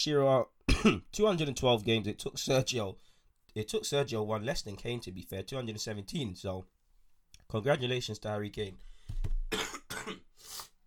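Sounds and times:
speech: 0.0 - 6.8, 7.5 - 9.6
harsh coughing: 0.7 - 1.1, 9.5 - 10.3.

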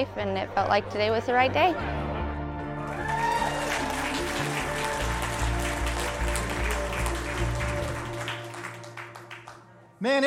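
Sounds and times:
speech: 0.0 - 2.0, 10.0 - 10.2
low droning instrumental music: 0.0 - 9.6
audience applauding: 2.8 - 9.7.

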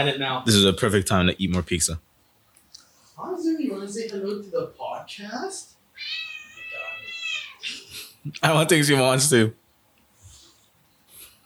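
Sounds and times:
speech: 0.0 - 2.1, 3.2 - 6.2, 7.6 - 9.6
female cat meowing: 5.9 - 7.8.

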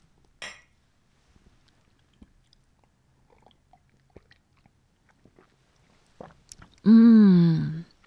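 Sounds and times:
ceramic coffee mugs clinking in a toast: 0.4 - 0.8
sipping and slurping coffee: 2.5 - 6.9
person sighing in satisfaction: 6.9 - 7.8.

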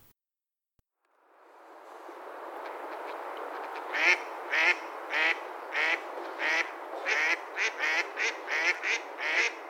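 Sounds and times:
hiss: 1.0 - 9.6
mallard duck quacking: 4.0 - 9.6.

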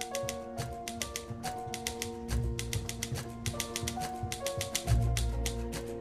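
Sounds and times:
sustained musical backdrop with low tones: 0.0 - 6.0
typewriter keys clacking: 0.0 - 6.0.

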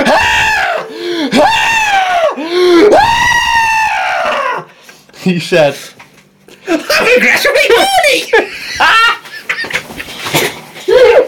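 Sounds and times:
voice imitating a young child screaming in distress: 0.0 - 4.7
speech: 5.2 - 6.0, 6.7 - 9.2
laughter: 6.6 - 11.2.

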